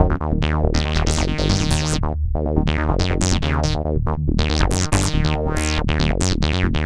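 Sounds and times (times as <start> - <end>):
bass loop: 0.0 - 6.8.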